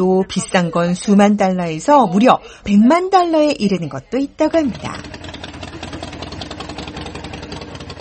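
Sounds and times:
speech: 0.0 - 5.3
Harley-Davidson motorcycle engine idling: 4.6 - 8.0.

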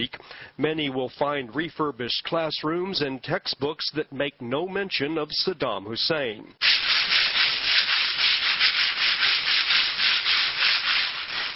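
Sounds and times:
speech: 0.0 - 6.8
sandpaper rubbing against classroom walls: 6.6 - 11.5.

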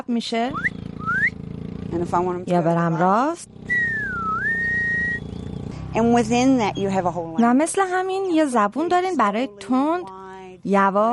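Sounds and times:
speech: 0.1 - 0.8, 1.9 - 3.8, 6.0 - 11.1
human whistle command from a trainer to a herding dog: 0.5 - 1.4, 3.7 - 5.3.

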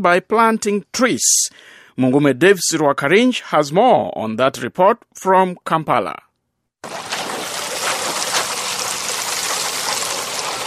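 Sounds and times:
speech: 0.0 - 7.0
water pouring onto a nursery bed of soil and plants in a refugee settlement in northern Uganda: 6.8 - 10.6.

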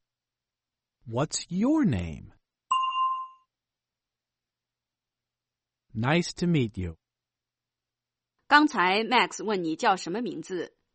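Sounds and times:
speech: 1.1 - 2.4, 6.0 - 7.0, 8.5 - 10.8
bright bell chime: 2.7 - 3.4.

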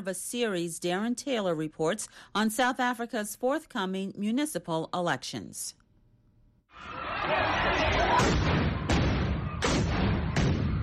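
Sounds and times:
speech: 0.0 - 5.8
continuous dense crowd din at a violent protest: 7.0 - 9.0
police stun grenades exploding during a violent protest: 8.0 - 10.8.

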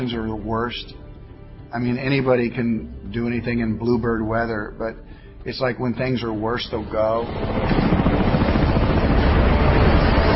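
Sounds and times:
speech: 0.0 - 1.1, 1.7 - 7.9
hovering helicopter roar with dense rotor chop: 6.7 - 10.3.

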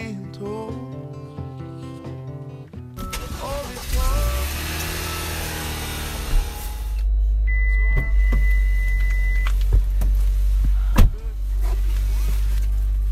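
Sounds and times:
car engine starting and running heard from inside the vehicle: 3.0 - 13.1
clunks: 3.0 - 13.1
sustained electronic tone: 6.7 - 9.6.

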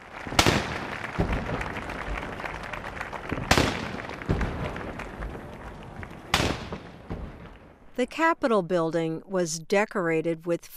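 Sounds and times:
outdoor crowd murmur: 0.0 - 8.4
ceremonial cannon blasts: 0.2 - 7.9
speech: 8.0 - 10.7.

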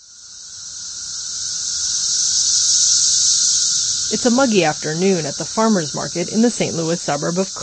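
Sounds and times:
periodical cicadas chorus buzzing: 0.0 - 7.6
speech: 4.1 - 7.6.

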